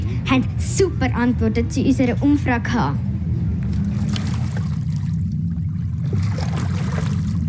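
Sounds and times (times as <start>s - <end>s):
continuous low rumble: 0.0s - 7.4s
speech: 0.3s - 3.1s
lake water lapping and splashing at the shore: 3.6s - 7.4s
small trickling splashes: 3.8s - 7.4s.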